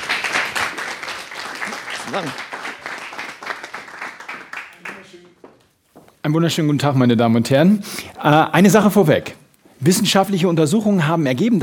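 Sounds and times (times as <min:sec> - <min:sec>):
audience applause welcoming a speaker: 0:00.0 - 0:05.4
speech: 0:02.1 - 0:02.5, 0:06.2 - 0:11.6.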